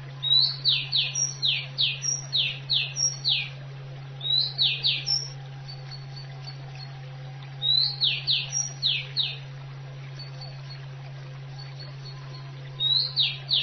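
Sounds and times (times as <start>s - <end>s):
constant low hum: 0.0s - 13.6s
Oriental magpie-robin singing downslurred whistles: 0.2s - 3.6s, 4.2s - 6.6s, 7.6s - 9.4s, 11.6s - 13.6s.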